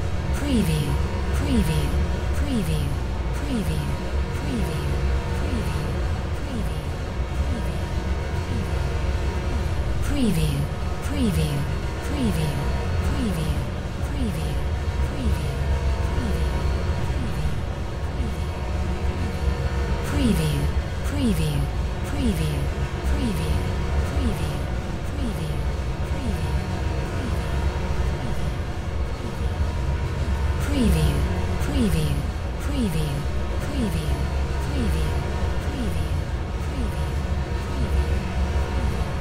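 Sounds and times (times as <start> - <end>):
generated brass drone: 0.2 - 39.1.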